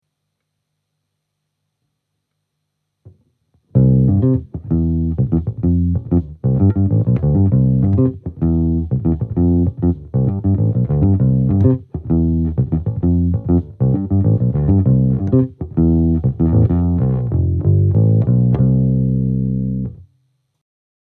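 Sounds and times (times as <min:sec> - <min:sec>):
bass: 0:03.7 - 0:20.1.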